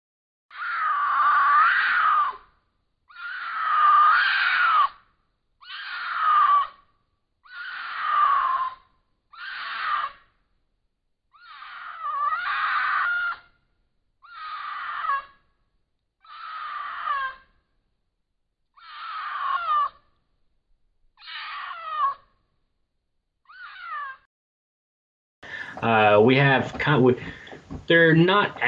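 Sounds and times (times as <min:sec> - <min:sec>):
mountain lion mating screams: 0:00.5 - 0:02.5, 0:03.1 - 0:05.0, 0:05.6 - 0:06.8, 0:07.4 - 0:10.2, 0:11.4 - 0:13.5, 0:14.2 - 0:15.4, 0:16.2 - 0:17.5, 0:18.8 - 0:20.0, 0:21.2 - 0:22.3
speech: 0:25.9 - 0:28.6.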